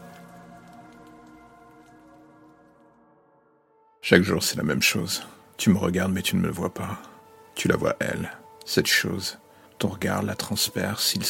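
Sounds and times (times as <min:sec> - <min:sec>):
rain falling: 0:00.0 - 0:03.0, 0:04.4 - 0:11.2
low sustained musical drone: 0:00.0 - 0:11.2
speech: 0:04.1 - 0:11.2.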